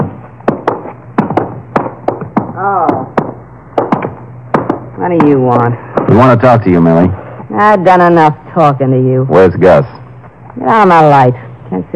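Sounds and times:
knocking on a door: 0:00.0 - 0:05.4
speech: 0:02.6 - 0:03.0, 0:05.0 - 0:10.0, 0:10.6 - 0:11.9.

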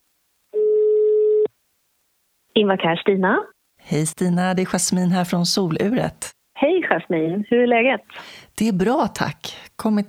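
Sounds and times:
steady telephone ringback tone: 0:00.6 - 0:01.5
speech: 0:02.6 - 0:10.0.

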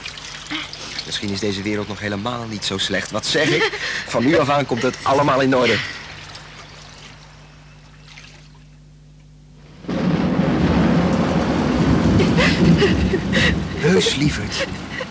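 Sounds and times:
heavy rain pouring down in a thunderstorm: 0:00.0 - 0:07.2, 0:09.6 - 0:15.0
low hum: 0:00.0 - 0:15.0
speech: 0:00.5 - 0:06.0
laughter: 0:03.2 - 0:06.1, 0:12.2 - 0:15.0
deep rumbling thunder: 0:09.7 - 0:15.0.

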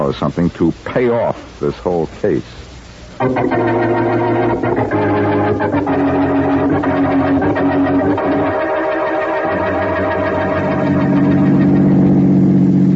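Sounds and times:
speech: 0:00.1 - 0:06.4
car engine droning as the vehicle speeds along: 0:03.3 - 0:12.9.

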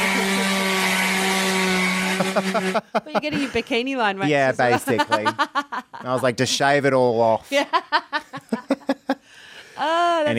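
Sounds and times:
power drill whirring: 0:00.0 - 0:02.8
laughter: 0:02.0 - 0:06.8, 0:07.5 - 0:09.2
speech: 0:02.2 - 0:08.2, 0:09.8 - 0:10.3.

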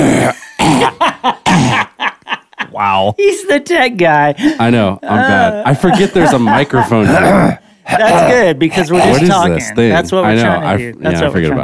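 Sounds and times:
loud coughs into a microphone: 0:00.0 - 0:02.0, 0:06.6 - 0:08.4
laughter: 0:00.8 - 0:03.1, 0:05.0 - 0:07.5
speech: 0:03.0 - 0:11.6.

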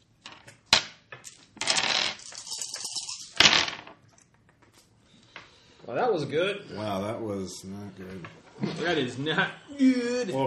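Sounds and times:
dice clattering onto a hard tabletop: 0:00.2 - 0:04.4
speech: 0:05.9 - 0:10.4.

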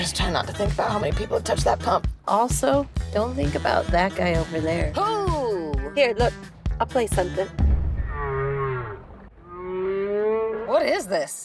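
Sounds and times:
speech: 0:00.0 - 0:05.2, 0:06.0 - 0:07.6, 0:10.7 - 0:11.4
mournful whale calls with rich harmonics: 0:08.0 - 0:11.0.

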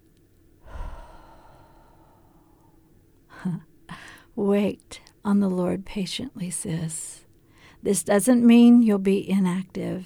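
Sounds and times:
deep breathing during a guided exercise: 0:00.6 - 0:04.3
speech: 0:03.4 - 0:03.7, 0:04.4 - 0:07.2, 0:07.8 - 0:10.0.

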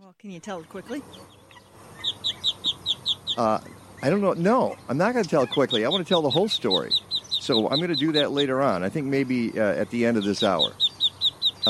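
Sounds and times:
speech: 0:00.2 - 0:01.4, 0:03.4 - 0:10.8
short high-pitched duck quacks sound effect: 0:01.5 - 0:09.3, 0:10.1 - 0:11.6.

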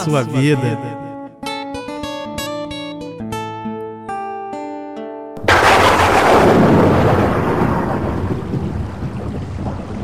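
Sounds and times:
speech: 0:00.0 - 0:01.0
loud crack of thunder rolling into a long rumble: 0:05.4 - 0:10.0
steady rain pattering: 0:05.4 - 0:10.0.

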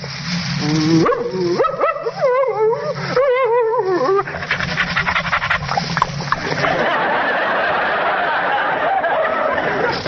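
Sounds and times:
noisy hiss: 0:00.0 - 0:10.0
man imitating a friendly dog with yips, whimpers and soft barks: 0:00.6 - 0:04.3
laughter: 0:06.2 - 0:10.0.

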